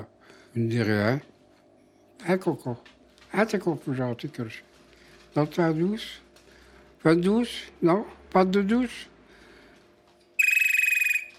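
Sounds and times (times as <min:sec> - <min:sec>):
speech: 0:00.5 - 0:01.3, 0:02.2 - 0:04.7, 0:05.3 - 0:06.2, 0:07.0 - 0:09.1
telephone ringing with rapid trilling electronic tone: 0:10.4 - 0:11.3.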